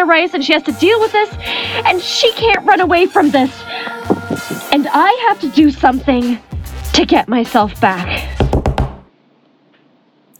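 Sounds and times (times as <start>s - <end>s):
speech: 0.1s - 8.2s
knocking on a door: 8.4s - 9.0s.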